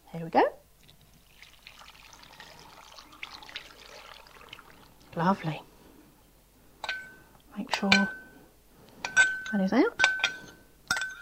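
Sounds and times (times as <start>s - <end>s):
speech: 0.1s - 0.6s, 5.2s - 5.7s, 7.6s - 8.2s, 9.5s - 10.0s
stirred dissolved liquid mixture pouring into a cooking pot: 0.8s - 5.3s
bright drips of liquid: 0.8s - 5.4s.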